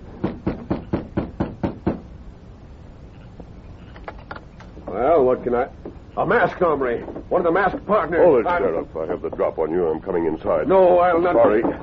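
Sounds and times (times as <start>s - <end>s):
firm knocking on a wooden front door: 0.2s - 2.1s
speech: 4.9s - 11.8s.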